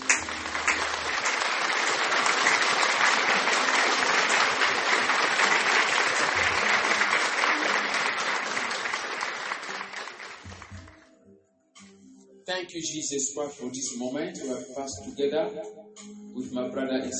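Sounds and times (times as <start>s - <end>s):
crowd at a religious gathering applauding: 0.0s - 11.1s
speech: 12.6s - 15.8s, 16.4s - 17.1s.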